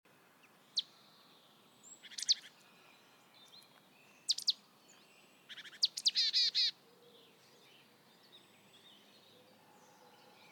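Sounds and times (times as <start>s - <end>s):
faint background hiss: 0.1s - 10.5s
marsh tit calling: 5.5s - 6.7s.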